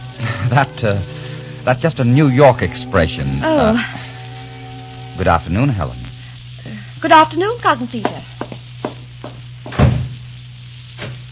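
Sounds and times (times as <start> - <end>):
steady low hum: 0.0 - 11.3
speech: 0.4 - 4.1, 5.2 - 6.0, 6.6 - 8.2
door banging shut: 9.7 - 10.1.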